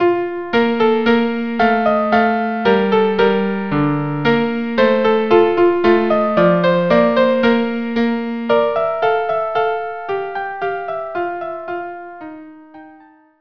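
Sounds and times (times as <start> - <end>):
larghetto music piece: 0.0 - 13.3.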